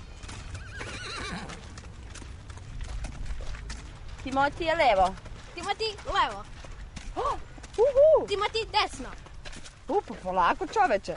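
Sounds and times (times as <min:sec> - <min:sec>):
hooves of a horse carrying a rider clopping at walking pace: 0:00.0 - 0:11.1
noisy outdoor background: 0:00.0 - 0:11.1
horse letting out a wavering whinny: 0:00.5 - 0:01.6
speech: 0:04.2 - 0:06.6, 0:07.2 - 0:09.2, 0:09.9 - 0:11.1.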